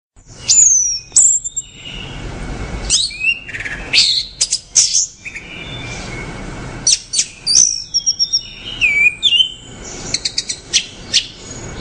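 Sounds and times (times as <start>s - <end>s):
orange-headed thrush whistling and trilling: 0.3s - 2.2s, 2.9s - 11.7s.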